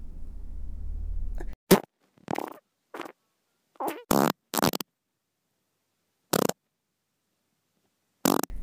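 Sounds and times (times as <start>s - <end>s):
low rumbling passage of gas and sputtering fart bursts: 1.4s - 3.2s, 3.8s - 4.8s, 6.3s - 6.6s.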